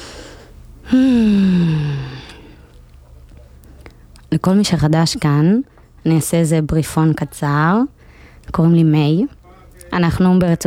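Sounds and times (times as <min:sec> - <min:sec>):
person exhaling deeply like a sigh to catch breath: 0:00.0 - 0:02.7
speech: 0:00.9 - 0:01.5, 0:04.3 - 0:10.6.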